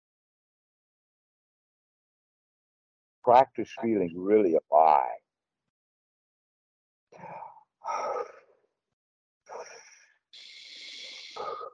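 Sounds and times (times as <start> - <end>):
speech: 3.2 - 5.2
long deep breaths with sighing exhales as a breathing exercise: 7.2 - 8.6, 9.5 - 11.7.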